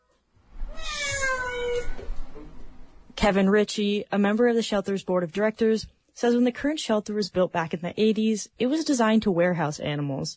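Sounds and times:
cat meowing: 0.7s - 2.3s
speech: 3.2s - 10.3s.

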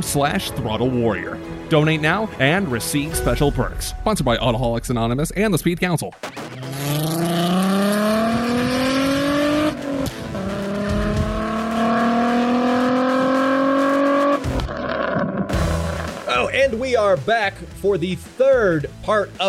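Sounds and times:
speech: 0.0s - 6.3s, 16.7s - 19.4s
Volkswagen VR6 engine revving: 6.2s - 16.4s
Volkswagen VR6 exhaust pops and crackles: 6.2s - 16.6s.

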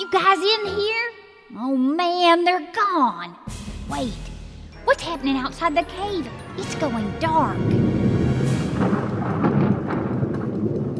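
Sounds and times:
speech: 0.1s - 4.3s, 4.9s - 9.0s
electrical thunderstorm rumbling low: 5.9s - 10.9s
sharp crackling lightning strikes: 7.6s - 10.9s.

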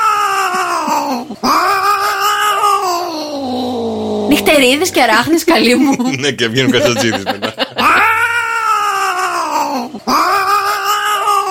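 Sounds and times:
cats caterwauling while mating: 0.0s - 4.4s, 7.8s - 11.4s
speech: 1.2s - 1.7s, 4.4s - 7.5s
laughter: 5.7s - 8.5s.

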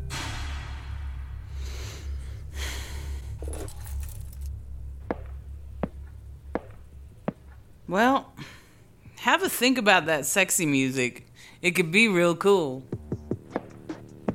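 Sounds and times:
low steady hum: 0.0s - 14.3s
bunch of car keys jangling as they are picked up: 3.3s - 4.6s
speech: 7.9s - 8.5s, 9.3s - 13.0s.

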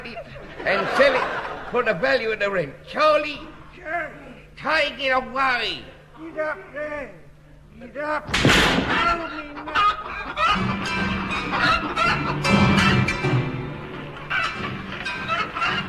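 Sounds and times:
laughter: 0.0s - 2.0s, 8.9s - 13.3s, 14.1s - 15.8s
speech: 0.6s - 7.2s, 7.8s - 12.9s
chickens clucking and squawking: 9.4s - 13.2s, 14.1s - 15.8s.

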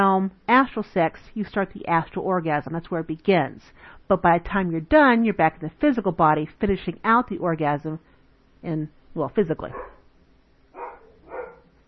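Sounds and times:
speech: 0.0s - 9.9s
low hum of room noise: 0.0s - 11.8s
dog barking: 9.7s - 10.1s, 10.8s - 11.7s.

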